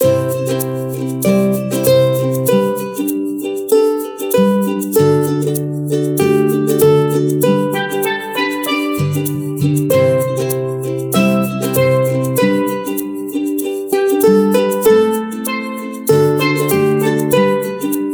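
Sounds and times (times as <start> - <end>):
pleasant ukulele ringtone on phone: 0.0 - 18.1.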